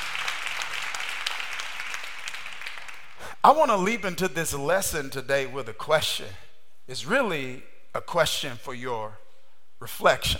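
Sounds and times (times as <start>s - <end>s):
crowd applauding in a large room: 0.0s - 3.2s
speech: 3.4s - 9.2s, 9.8s - 10.3s.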